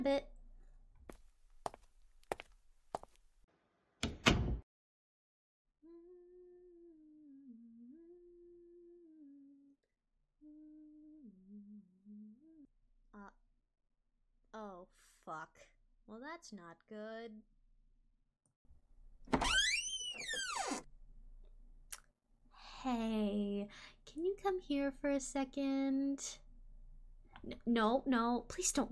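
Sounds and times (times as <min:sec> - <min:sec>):
speech: 0:00.0 - 0:00.3, 0:15.6 - 0:17.6, 0:22.8 - 0:26.4, 0:27.4 - 0:28.9
footsteps: 0:01.0 - 0:03.3
bedroom door shutting: 0:04.0 - 0:04.6, 0:19.3 - 0:20.8.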